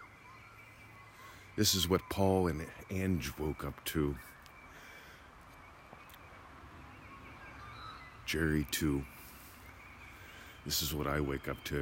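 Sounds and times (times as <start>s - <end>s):
birds calling in the morning: 0.0s - 11.8s
steady outdoor ambient hiss: 0.0s - 11.8s
speech: 1.6s - 4.4s, 8.3s - 9.2s, 10.6s - 11.8s.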